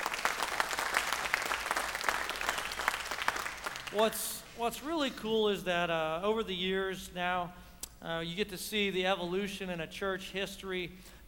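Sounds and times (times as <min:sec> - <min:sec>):
church crowd applauding a student worship team: 0:00.0 - 0:04.1
speech: 0:03.9 - 0:11.2.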